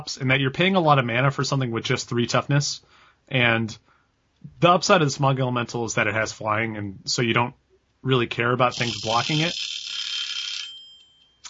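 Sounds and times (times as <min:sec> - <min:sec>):
speech: 0:00.0 - 0:03.9, 0:04.5 - 0:09.7
timer bright electronic ringing tone: 0:08.7 - 0:11.4.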